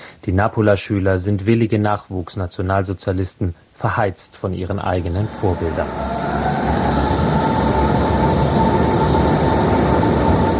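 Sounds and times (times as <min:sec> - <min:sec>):
faint high whine of a commuter train: 0:00.0 - 0:10.5
speech: 0:00.2 - 0:06.2
S-Bahn commuter train rumbling in a tunnel: 0:04.6 - 0:10.5.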